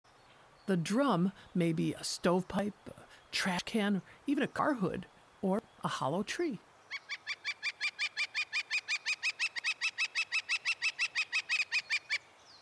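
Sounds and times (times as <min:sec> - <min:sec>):
speech: 0:00.7 - 0:06.7
Northern Flicker woodpecker calling a series of sharp notes: 0:06.9 - 0:12.6.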